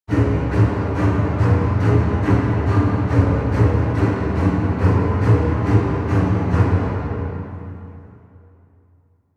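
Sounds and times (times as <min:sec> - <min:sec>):
low intense horror strings: 0:00.1 - 0:08.5.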